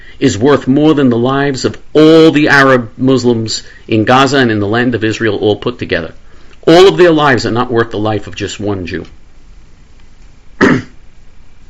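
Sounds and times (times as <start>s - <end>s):
speech: 0.2s - 9.2s
single short harsh cough: 10.6s - 11.0s.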